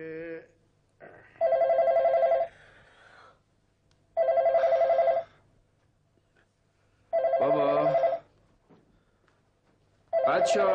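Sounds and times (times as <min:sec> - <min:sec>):
telephone bell ringing: 0:01.4 - 0:02.5, 0:04.2 - 0:05.4, 0:07.1 - 0:08.3, 0:10.1 - 0:10.7
speech: 0:10.4 - 0:10.7.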